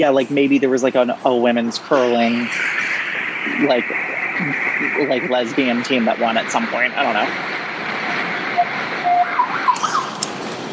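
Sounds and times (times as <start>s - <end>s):
speech: 0.0s - 7.7s
train passing on overhead tracks heard from underneath: 2.0s - 10.7s.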